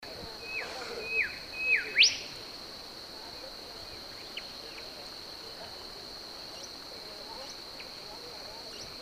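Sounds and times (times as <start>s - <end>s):
high background hiss: 0.0s - 9.0s
Brown-backed whistler singing in Papua New Guinea: 0.4s - 2.3s.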